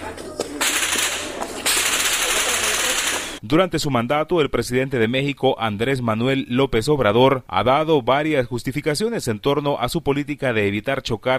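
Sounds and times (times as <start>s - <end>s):
gunfire from crossfire in Chiapas, Mexico: 0.6s - 3.4s
speech: 3.5s - 11.3s.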